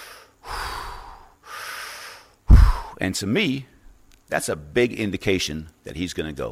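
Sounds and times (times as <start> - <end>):
voice imitating heavy breathing of a man: 0.0 - 3.0
speech: 3.0 - 3.7, 4.3 - 6.5.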